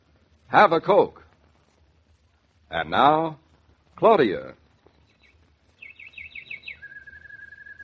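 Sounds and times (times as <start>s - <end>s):
speech: 0.5s - 1.2s, 2.7s - 3.4s, 4.0s - 4.6s
single bird singing rising chirps and a high trill in the morning: 4.9s - 7.8s.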